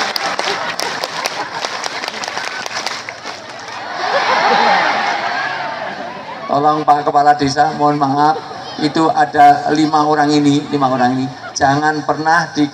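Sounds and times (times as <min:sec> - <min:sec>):
group clapping the rhythmic scout clap pattern at a village gathering: 0:00.0 - 0:03.8
laughter: 0:00.0 - 0:06.9
crowd noise at a village gathering: 0:00.0 - 0:12.7
speech: 0:06.6 - 0:12.7.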